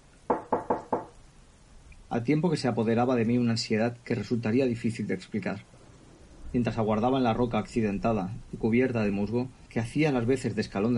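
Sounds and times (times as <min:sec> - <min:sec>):
firm knocks on a wooden door: 0:00.3 - 0:01.2
speech: 0:02.1 - 0:05.7, 0:06.5 - 0:10.9.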